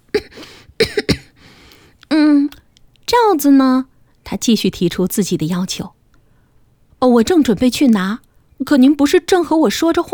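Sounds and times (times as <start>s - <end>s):
forced coughs in quick bursts: 0.1s - 1.6s
speech: 3.4s - 6.0s, 7.0s - 10.1s.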